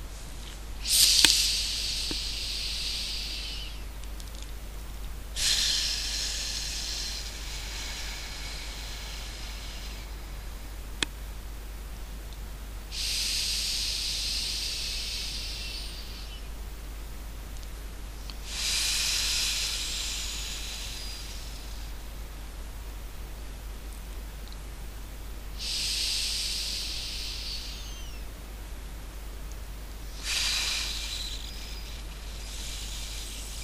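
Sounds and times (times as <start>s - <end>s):
steady low hum: 0.0s - 33.6s
slow deep breathing during a guided relaxation exercise: 0.8s - 3.8s, 5.3s - 11.1s, 12.9s - 16.4s, 18.3s - 22.2s, 25.6s - 28.2s, 30.0s - 33.6s.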